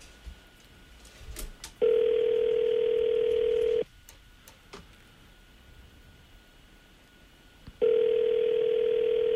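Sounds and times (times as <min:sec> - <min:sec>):
outgoing phone call ringback tone: 0:01.8 - 0:03.9, 0:07.8 - 0:09.3.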